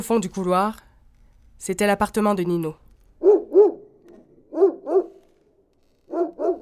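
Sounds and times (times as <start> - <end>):
speech: 0.0 - 0.9, 1.6 - 2.8
dog barking deep woofs behind an apartment partition wall: 3.2 - 3.9, 4.5 - 5.2, 6.1 - 6.6.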